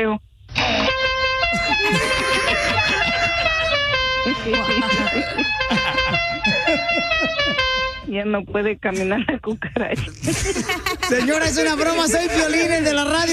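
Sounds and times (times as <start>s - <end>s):
horn honking in long blaring blasts that step between pitches: 0.6s - 8.2s
laughter: 1.5s - 8.0s, 9.0s - 13.0s
speech: 4.3s - 13.3s.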